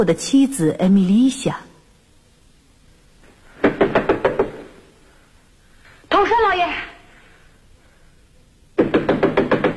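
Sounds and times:
speech: 0:00.0 - 0:01.7
knocking on a door: 0:03.6 - 0:04.7, 0:08.8 - 0:09.7.

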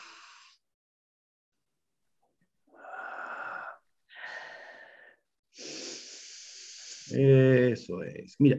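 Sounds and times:
person breathing deeply during a guided relaxation exercise: 0:00.0 - 0:00.6, 0:02.8 - 0:07.2
speech: 0:07.1 - 0:08.5.

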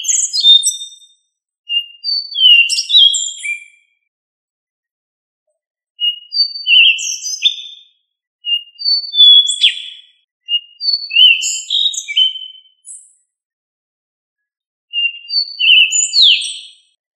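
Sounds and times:
thrush singing sweet whistles and slurred notes: 0:00.0 - 0:03.9, 0:06.0 - 0:12.9, 0:15.0 - 0:17.0.

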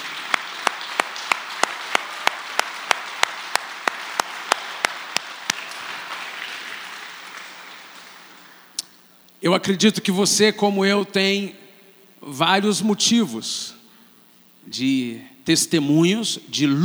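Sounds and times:
crowd noise: 0:00.0 - 0:08.8
church congregation clapping in unison: 0:00.0 - 0:08.9
speech: 0:09.4 - 0:11.6, 0:12.2 - 0:13.8, 0:14.7 - 0:16.8.

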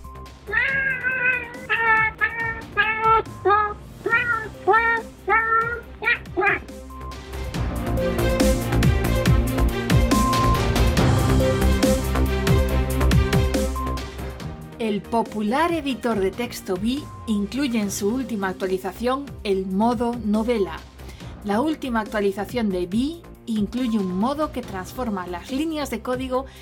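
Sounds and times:
dense loud busy mixed sound: 0:00.0 - 0:12.9
cat meowing: 0:00.4 - 0:06.7
speech: 0:15.0 - 0:26.6.

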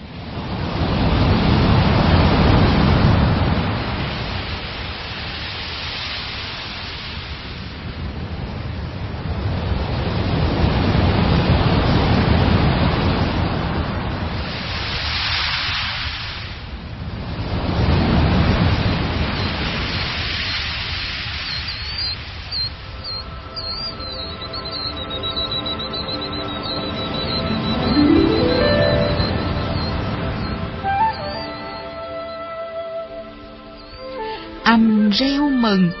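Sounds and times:
rolling waves of the East Sea washing against the shore: 0:00.0 - 0:31.9
speech: 0:35.1 - 0:35.9.

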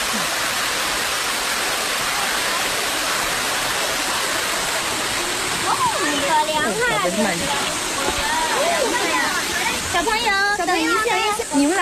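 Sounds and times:
small waterfall fed by spring water at a spot of pools and falls: 0:00.0 - 0:11.7
speech: 0:06.4 - 0:07.8, 0:10.0 - 0:11.7.

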